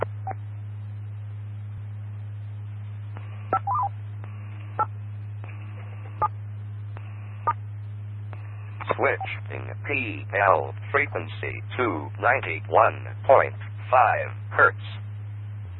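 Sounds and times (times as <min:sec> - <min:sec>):
steady low radio hum with static: 0:00.0 - 0:15.7
radio net weather alert electronic beeping tones: 0:03.5 - 0:03.9
speech: 0:03.5 - 0:04.0, 0:09.0 - 0:15.0.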